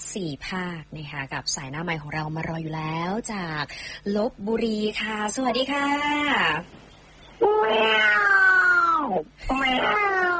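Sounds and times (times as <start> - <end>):
speech: 0.1 - 6.8, 7.6 - 8.4, 9.0 - 10.3
cat meowing: 7.4 - 10.3.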